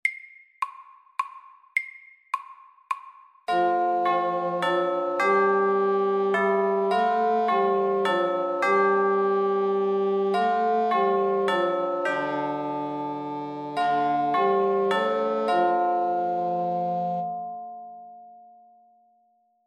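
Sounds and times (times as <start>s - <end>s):
bell ringing: 3.5s - 18.2s.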